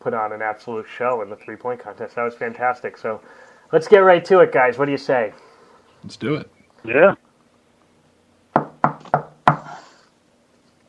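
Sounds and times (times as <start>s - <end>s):
speech: 0.0s - 7.2s
firm knocking on a wooden door: 8.5s - 9.7s.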